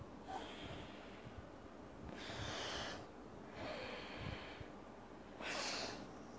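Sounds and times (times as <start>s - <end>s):
alternate-nostril breathing through the nose: 0.3s - 1.4s, 2.1s - 4.8s, 5.4s - 6.1s.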